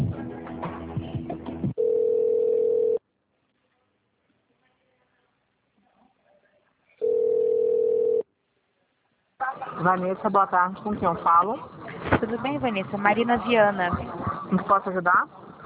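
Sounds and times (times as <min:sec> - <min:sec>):
telephone ringback tone: 0:01.8 - 0:03.0, 0:07.0 - 0:08.2
speech: 0:09.8 - 0:15.4.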